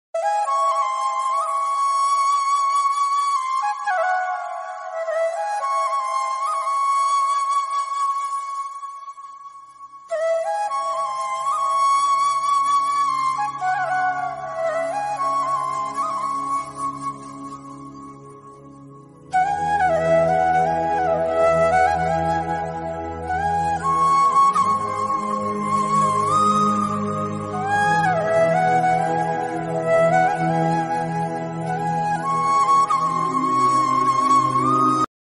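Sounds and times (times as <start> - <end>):
background flute music ringtone: 0.2 - 35.1.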